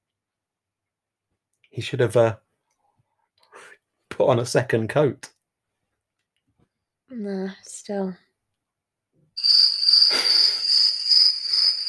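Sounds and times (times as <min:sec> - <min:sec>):
speech: 0:01.7 - 0:02.4, 0:04.2 - 0:05.4, 0:07.1 - 0:08.2
crickets chirping: 0:09.4 - 0:11.8.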